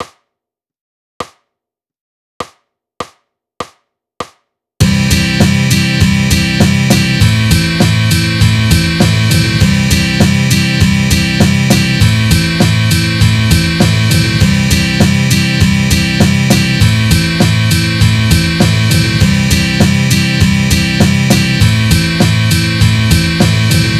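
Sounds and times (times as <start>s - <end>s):
eighth note base rhythm: 4.8s - 23.9s.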